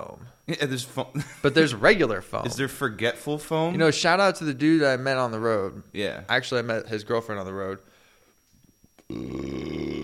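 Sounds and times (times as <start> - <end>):
speech: 0.0 - 8.0
deep throaty belch: 9.0 - 10.0.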